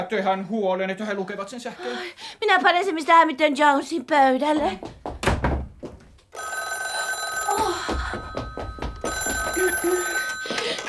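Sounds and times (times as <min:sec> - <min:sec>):
speech: 0:00.0 - 0:05.0
telephone ringing with electric bell tone: 0:06.4 - 0:10.8.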